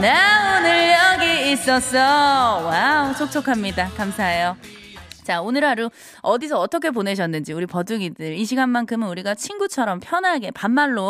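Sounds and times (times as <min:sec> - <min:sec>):
speech: 0:00.0 - 0:00.4, 0:01.6 - 0:11.0
voice speaking with applied echo and reverb effect: 0:00.0 - 0:11.0.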